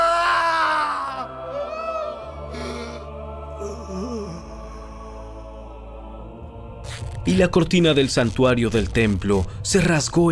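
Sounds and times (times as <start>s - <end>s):
man's loud anguished dying cry weakening into wavering groans: 0.0s - 4.8s
speech: 7.3s - 10.3s.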